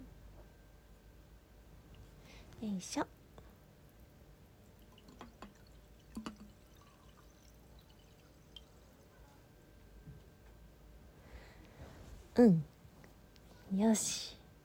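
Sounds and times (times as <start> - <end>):
speech: 2.6 - 3.2, 12.4 - 12.7, 13.8 - 14.4
sake trickling into a glass: 3.8 - 9.4.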